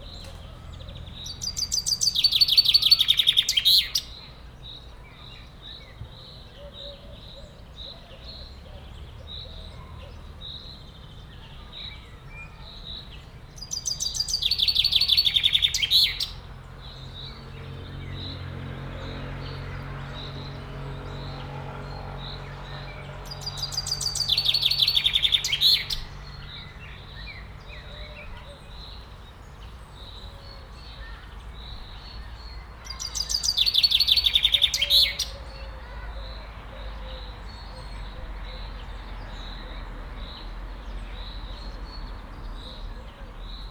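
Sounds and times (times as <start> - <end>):
free-flying chaffinch at Jaszbereny Zoo: 0.0 - 43.6.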